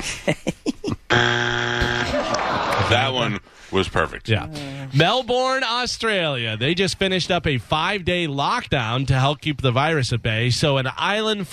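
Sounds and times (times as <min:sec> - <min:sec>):
speech: 0:00.0 - 0:00.5, 0:02.9 - 0:11.5
laughter: 0:00.0 - 0:01.1, 0:01.9 - 0:03.4
loud game show buzzer with harsh steady electronic drone: 0:01.1 - 0:02.6.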